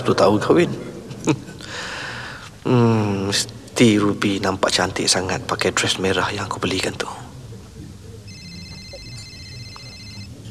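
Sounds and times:
speech: 0.0 - 1.4, 2.7 - 7.2
laughter: 0.8 - 1.9
telephone ringing with an incoming call: 8.3 - 10.4.

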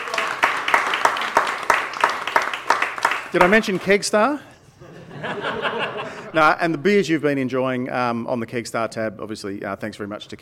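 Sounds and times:
audience applause: 0.0 - 3.9
speech: 3.3 - 4.5, 5.2 - 10.4
laughter: 4.8 - 7.0.

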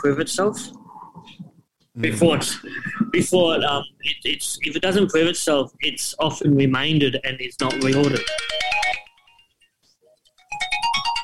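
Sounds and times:
speech: 0.0 - 8.7
mobile phone ringtone: 7.7 - 9.7, 10.4 - 11.2.

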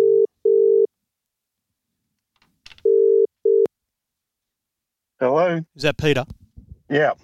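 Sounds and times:
telephone ringback tone: 0.0 - 0.9, 2.8 - 3.7
speech: 5.6 - 7.2.

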